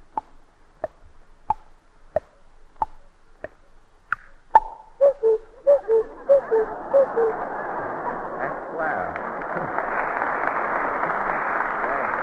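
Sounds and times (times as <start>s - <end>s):
mouth-clicked ticks imitating a cuckoo clock: 0.1s - 4.8s
voice imitating two-note cuckoo clock calls: 4.6s - 7.4s
laughter: 5.6s - 12.2s.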